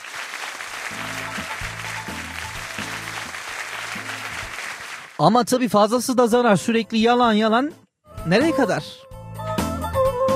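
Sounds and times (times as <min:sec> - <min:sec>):
audience applause: 0:00.0 - 0:05.2
speech: 0:05.2 - 0:09.0.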